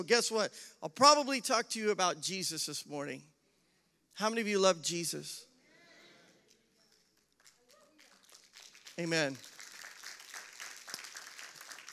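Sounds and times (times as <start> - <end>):
speech: 0.0 - 3.3, 4.2 - 5.5, 9.0 - 9.5
faint scattered audience applause: 6.9 - 11.9.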